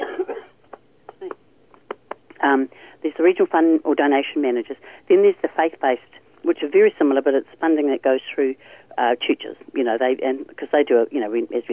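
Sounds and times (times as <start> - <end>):
person coughing: 0.0 - 0.6
speech: 2.4 - 11.7.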